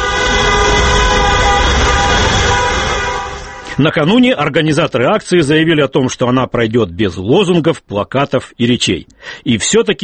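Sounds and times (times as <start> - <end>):
car horns honking: 0.0 - 4.4
low rumble of passing traffic: 0.0 - 5.2
speech: 3.8 - 10.0.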